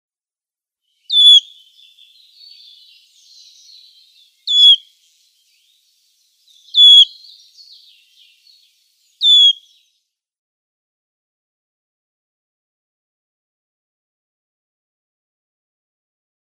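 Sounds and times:
Wood Warbler calling: 1.0s - 9.9s.

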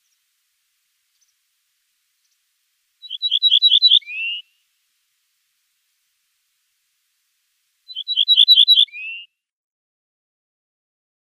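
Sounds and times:
ortolan bunting singing: 3.0s - 4.6s, 7.9s - 9.3s.

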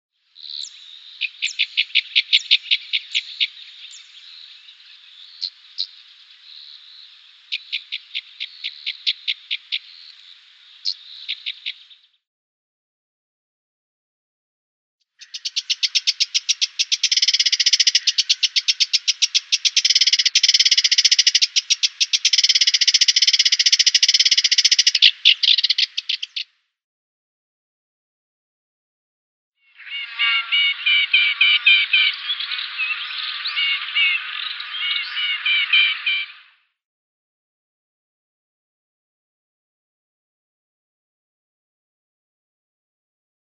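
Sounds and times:
Cyprus warbler calls: 0.4s - 12.1s, 15.2s - 26.5s, 29.7s - 36.5s.

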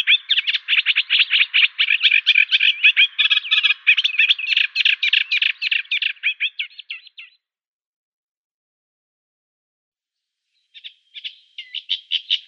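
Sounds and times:
Eurasian reed warbler song: 0.0s - 7.4s, 10.5s - 12.4s.

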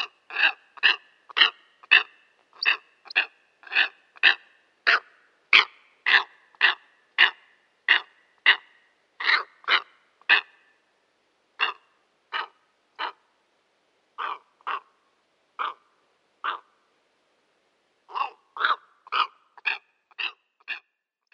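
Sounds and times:
steppe eagle coarse crow-like barks: 0.0s - 8.6s, 9.2s - 10.5s, 11.6s - 13.2s, 14.2s - 14.9s, 15.6s - 15.8s, 16.4s - 16.7s, 18.1s - 20.8s.

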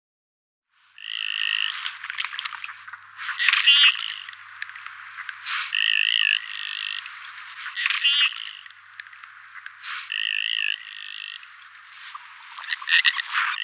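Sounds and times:
male common goldeneye buzzy nasal calls: 1.0s - 13.6s
male common goldeneye sharp rasping clicks: 1.0s - 13.6s.

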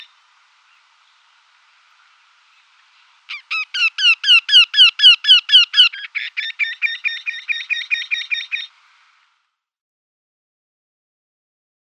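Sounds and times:
Eurasian wryneck display call: 2.4s - 8.8s.

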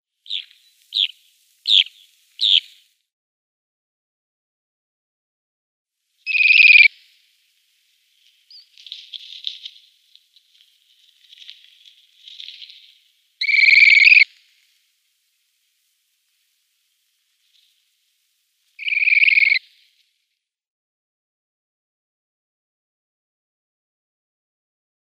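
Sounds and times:
Western Sandpiper calls: 0.2s - 2.9s, 6.2s - 14.8s, 18.7s - 19.9s.

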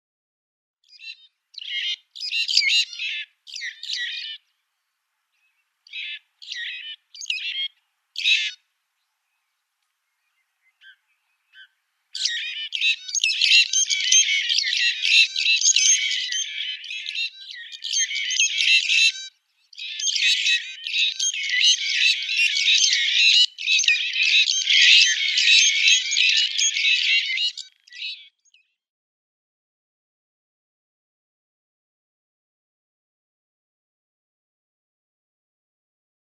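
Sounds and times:
Grey-backed Fiscal calls: 0.8s - 28.7s.

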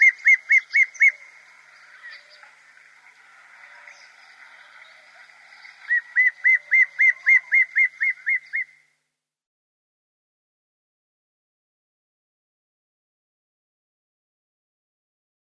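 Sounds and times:
immature dark chanting goshawk calling: 0.0s - 1.3s, 5.8s - 8.8s.

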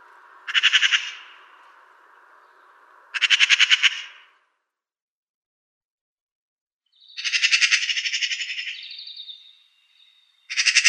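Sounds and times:
Eurasian magpie harsh call: 0.4s - 1.6s, 3.1s - 4.3s, 7.2s - 8.9s, 10.5s - 10.8s.

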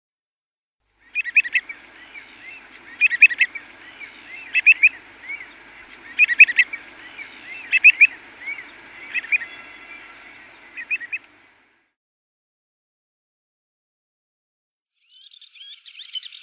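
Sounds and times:
Terek Sandpiper calls: 1.0s - 11.6s.

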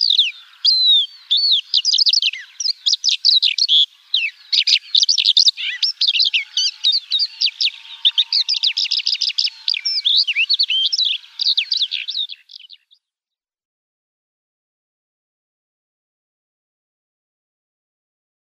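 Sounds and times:
white-winged lark song: 0.0s - 13.0s.

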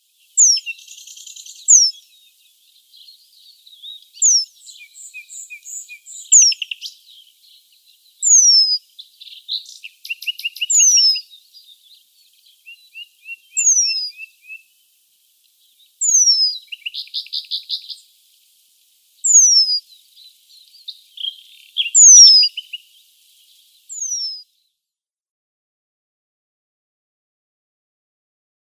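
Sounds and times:
Eurasian penduline tit calls: 0.3s - 14.7s, 15.6s - 18.1s, 19.2s - 24.4s.

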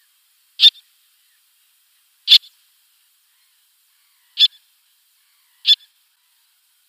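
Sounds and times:
little tern making brief piercing kik calls: 0.6s - 0.8s, 2.3s - 2.5s, 4.3s - 4.6s, 5.3s - 5.9s.

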